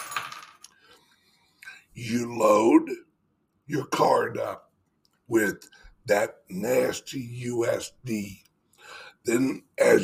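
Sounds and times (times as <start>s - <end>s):
keys dropped on a hard surface clattering and jingling: 0.0s - 0.7s
speech: 2.0s - 3.1s, 3.7s - 4.7s, 5.3s - 10.0s.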